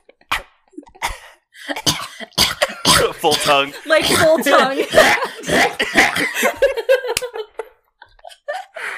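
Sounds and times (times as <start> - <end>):
small coughs from person entering a smoke-filled house: 1.0 - 6.4
speech: 3.2 - 7.3
laughter: 3.6 - 8.8.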